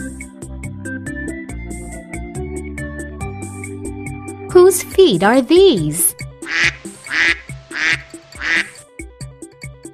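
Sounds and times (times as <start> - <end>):
speech: 4.7 - 6.7
duck quacking: 6.4 - 8.8.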